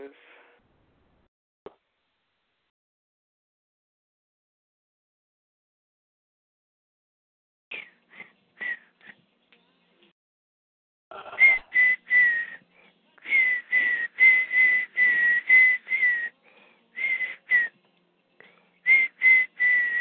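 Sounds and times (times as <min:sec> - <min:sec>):
person whistling a quick bouncy tune: 0:07.7 - 0:09.2, 0:11.4 - 0:12.6, 0:13.2 - 0:16.3, 0:17.0 - 0:17.7, 0:18.8 - 0:19.9.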